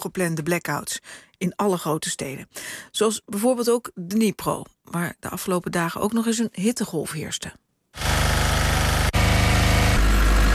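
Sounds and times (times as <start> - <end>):
speech: 0.0 - 8.1
deeper hum: 8.0 - 10.5
power generators idling in city streets during blackouts: 8.0 - 10.5.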